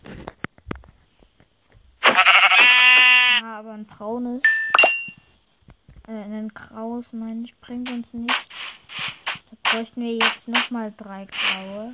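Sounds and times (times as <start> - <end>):
video game sheep bleat: 2.0 - 3.4
speech: 3.9 - 4.6, 6.1 - 8.6, 9.7 - 11.9.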